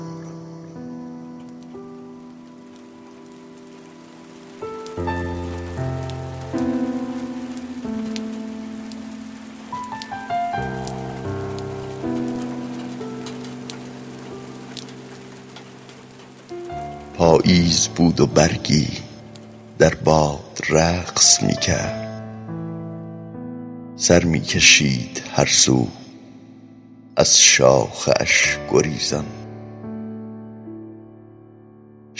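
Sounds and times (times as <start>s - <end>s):
steady rain: 0.0s - 22.5s
speech: 17.4s - 19.1s, 19.8s - 22.0s, 24.0s - 26.0s, 27.2s - 29.4s.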